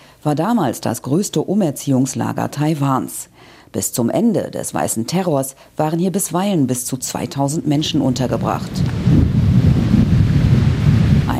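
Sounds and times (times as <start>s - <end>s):
speech: 0.2s - 9.4s
wind noise: 7.2s - 11.3s
heavy sea surf crashing at the shore of Green Island Taiwan: 7.7s - 11.3s.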